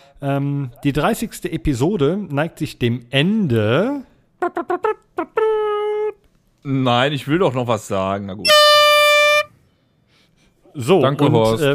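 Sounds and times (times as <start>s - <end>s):
speech: 0.2s - 5.6s, 6.6s - 8.8s, 10.8s - 11.7s
horn blast: 8.5s - 9.5s.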